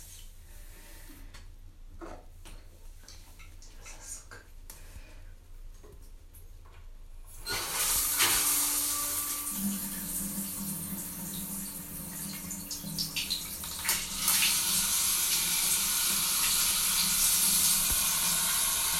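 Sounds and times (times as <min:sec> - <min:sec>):
shower water spraying from nozzle: 0:07.5 - 0:18.9.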